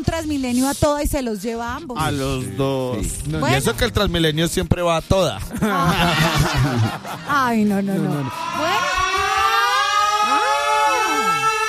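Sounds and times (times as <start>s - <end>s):
speech: 0.0s - 9.0s
laughter: 5.4s - 9.7s
ambulance siren wailing: 8.2s - 11.6s.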